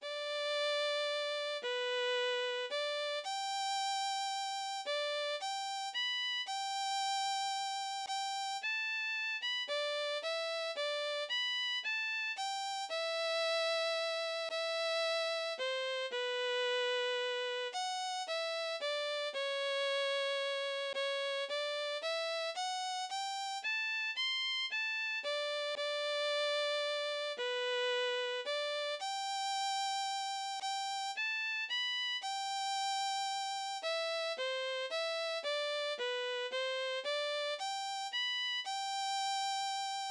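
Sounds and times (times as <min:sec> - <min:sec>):
violin or flute obbligato: 0:00.0 - 0:40.0.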